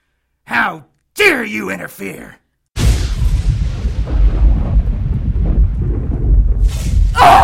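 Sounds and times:
speech: 0:00.7 - 0:02.4, 0:07.2 - 0:07.4
sharp sizzling crack: 0:02.8 - 0:04.8, 0:06.5 - 0:07.2
heavy rolling rumble: 0:02.8 - 0:07.4
lightning bolt striking a bullet in flight and exploding it: 0:02.8 - 0:07.4.

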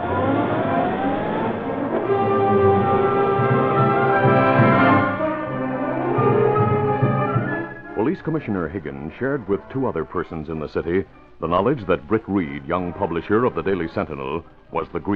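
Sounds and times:
car engine revving as the car pulls away: 0:00.0 - 0:07.8
speech: 0:08.2 - 0:15.1.

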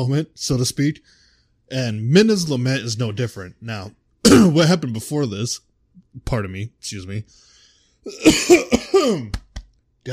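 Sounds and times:
speech: 0:00.0 - 0:09.4
harsh throaty coughing fit: 0:04.3 - 0:04.7, 0:08.1 - 0:09.3.

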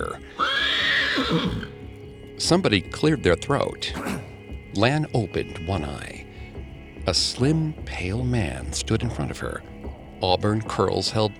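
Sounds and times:
horse pulling a carriage neighing loudly: 0:00.0 - 0:01.8
speech: 0:01.2 - 0:01.8, 0:02.4 - 0:06.2, 0:07.1 - 0:11.3.

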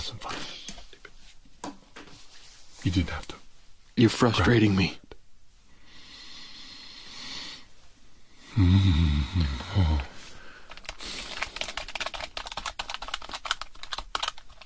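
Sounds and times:
speech: 0:02.8 - 0:03.4, 0:04.0 - 0:05.0, 0:08.6 - 0:10.2
low vocal groan: 0:08.5 - 0:10.2
typing on a computer keyboard: 0:10.7 - 0:14.6.

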